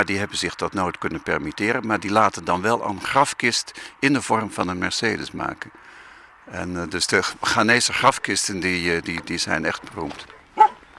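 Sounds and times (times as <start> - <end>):
speech: 0.0 - 10.7
single short dog bark: 10.2 - 10.8.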